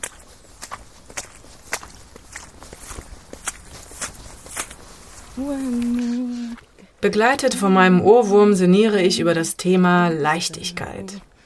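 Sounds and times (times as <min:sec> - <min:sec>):
boots squelching through wet boggy moor-like ground on a path toward Homberg: 0:00.0 - 0:06.8
speech: 0:05.4 - 0:06.1, 0:07.0 - 0:11.3.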